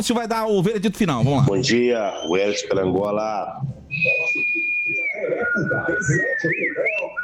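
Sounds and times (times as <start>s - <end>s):
speech: 0.0s - 4.7s, 5.6s - 7.1s
person whistling a high bird-like note imitating birdsong: 3.9s - 7.2s.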